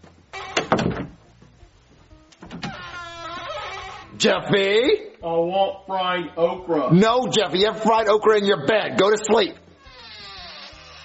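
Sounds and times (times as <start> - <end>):
door creaking on its hinges: 0.0 - 1.2, 2.4 - 4.2, 9.6 - 11.0
speech: 4.2 - 9.6.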